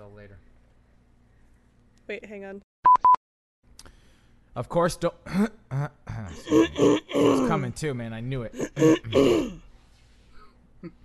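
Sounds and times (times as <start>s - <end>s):
speech: 2.1s - 2.7s, 4.6s - 9.6s, 10.8s - 11.0s
loud rough throat clearing: 5.3s - 7.6s, 8.5s - 9.6s.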